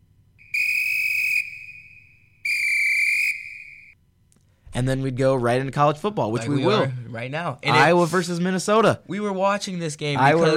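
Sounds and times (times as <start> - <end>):
low hum: 0.0 - 10.5
shrill referee whistle blasts: 0.4 - 4.0
speech: 4.8 - 10.5.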